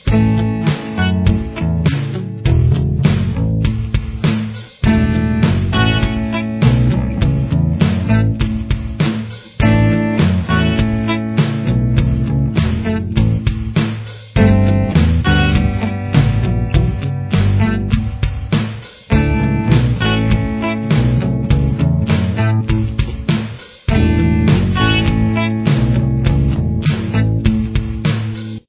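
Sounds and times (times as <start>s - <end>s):
solo guitar backing: 0.0s - 13.7s, 14.4s - 28.1s.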